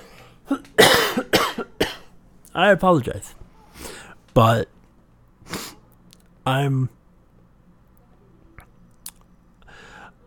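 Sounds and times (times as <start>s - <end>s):
harsh raspy coughs: 0.5s - 2.1s
speech: 2.6s - 3.4s, 4.4s - 4.8s, 6.4s - 7.0s.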